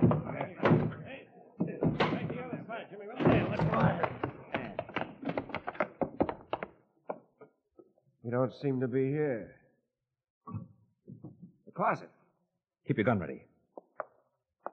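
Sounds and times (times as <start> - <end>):
door forced open with heavy thuds and banging slams: 0.0 - 6.7
sharper knocks and clatters: 0.0 - 7.5
speech: 8.3 - 9.6, 11.8 - 12.2, 12.9 - 13.5.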